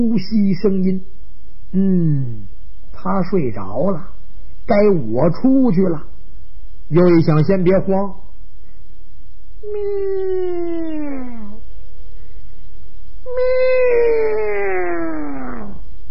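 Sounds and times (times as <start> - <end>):
speech: 0.0 - 4.1, 4.7 - 6.1, 6.9 - 8.2, 9.6 - 11.3
human voice imitating a cat meowing: 9.6 - 11.6, 13.3 - 15.8.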